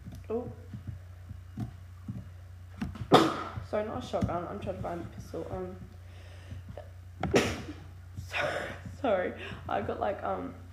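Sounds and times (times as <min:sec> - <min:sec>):
low hum: 0:00.0 - 0:10.7
speech: 0:00.3 - 0:00.7, 0:03.2 - 0:05.9, 0:08.4 - 0:10.6
sneeze: 0:07.3 - 0:07.7.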